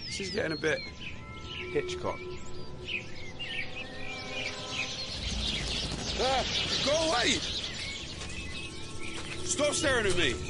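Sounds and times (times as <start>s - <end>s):
small birds chirping like sparrows: 0.0s - 10.4s
speech: 0.2s - 1.0s, 1.6s - 3.3s, 6.2s - 7.6s, 9.5s - 10.4s.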